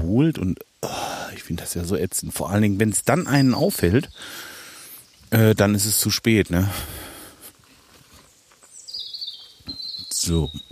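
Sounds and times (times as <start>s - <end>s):
speech: 0.1s - 4.6s, 5.3s - 7.1s, 10.2s - 10.7s
birds chirping and singing: 1.8s - 7.4s, 8.1s - 10.7s.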